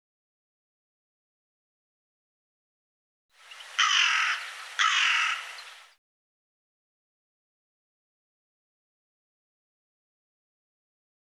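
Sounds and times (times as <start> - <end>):
bird calling loud hoarse grating caws: 3.4 - 6.0.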